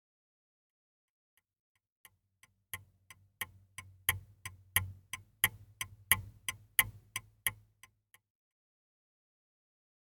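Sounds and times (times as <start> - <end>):
clock ticking: 2.7 - 7.7.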